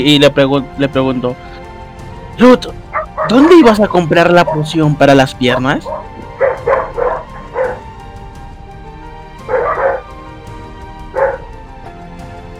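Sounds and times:
speech: 0:00.0 - 0:01.6, 0:02.4 - 0:06.1
dog barking in the background: 0:02.9 - 0:03.5, 0:04.2 - 0:04.9, 0:05.5 - 0:07.8, 0:09.4 - 0:10.2, 0:11.1 - 0:11.5.

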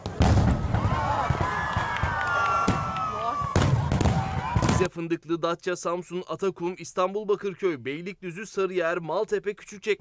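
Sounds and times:
fireworks bursting in sharp bangs and crackles: 0:00.0 - 0:04.9
speech: 0:04.8 - 0:09.9.

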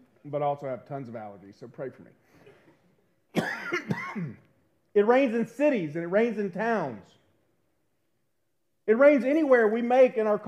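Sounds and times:
speech: 0:00.2 - 0:02.5, 0:03.4 - 0:07.2, 0:08.9 - 0:10.4
raspy throaty coughs: 0:02.4 - 0:04.5.

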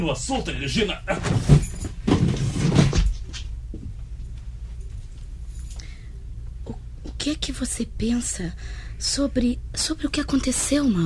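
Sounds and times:
speech: 0:00.0 - 0:01.6, 0:07.2 - 0:11.0
chest of drawers shoved against a door: 0:01.1 - 0:03.9.

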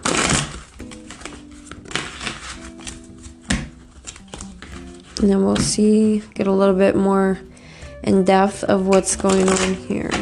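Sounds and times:
romance tarot deck being shuffled: 0:00.0 - 0:06.4, 0:08.7 - 0:10.2
speech: 0:05.2 - 0:10.2.

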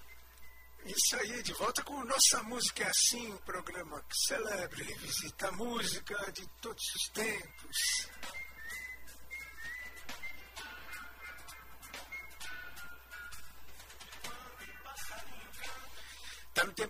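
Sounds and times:
soft broadband background: 0:00.0 - 0:16.8
speech: 0:00.9 - 0:08.4
thrush whistling song: 0:07.3 - 0:13.4.

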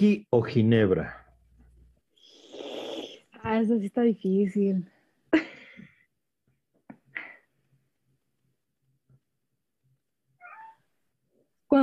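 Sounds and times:
speech: 0:00.0 - 0:01.2, 0:03.4 - 0:05.5
cat meowing: 0:10.4 - 0:10.9.

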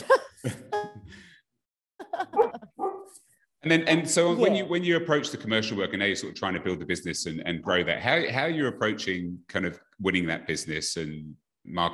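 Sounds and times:
dog barking: 0:02.4 - 0:03.1
speech: 0:03.6 - 0:11.9.

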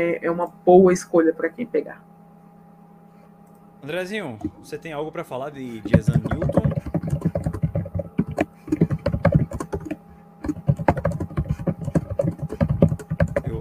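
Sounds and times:
speech: 0:00.0 - 0:02.1, 0:03.8 - 0:06.6
typing on a mechanical computer keyboard: 0:05.8 - 0:13.5.

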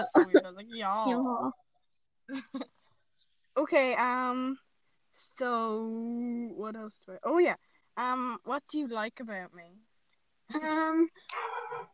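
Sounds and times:
laughter: 0:00.0 - 0:00.5
speech: 0:00.0 - 0:01.6, 0:02.3 - 0:02.8, 0:03.6 - 0:04.6, 0:05.4 - 0:09.9, 0:10.5 - 0:11.9
dog barking: 0:11.3 - 0:11.9.

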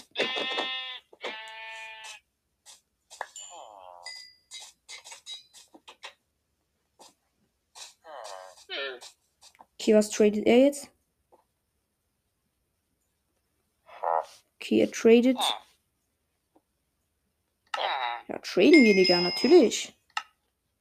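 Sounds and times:
sheep bleating: 0:00.1 - 0:02.2
speech: 0:09.8 - 0:10.9, 0:14.7 - 0:15.6, 0:18.6 - 0:20.0.

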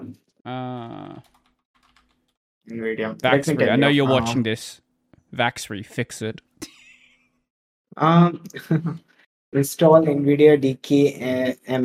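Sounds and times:
speech: 0:00.5 - 0:01.4, 0:02.7 - 0:06.8, 0:08.0 - 0:11.8
typing on a computer keyboard: 0:01.2 - 0:02.4.

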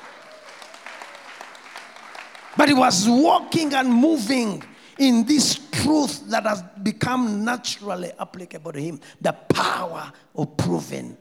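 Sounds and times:
audience clapping: 0:00.0 - 0:05.2
speech: 0:02.6 - 0:11.1.

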